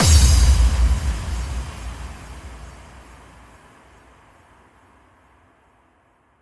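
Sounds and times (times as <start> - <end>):
bass drum with reverb effect: 0.0 - 3.1.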